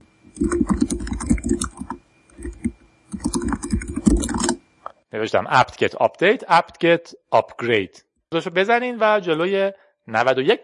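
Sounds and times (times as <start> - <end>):
computer keyboard typing: 0.3 - 4.6
speech: 5.2 - 10.6.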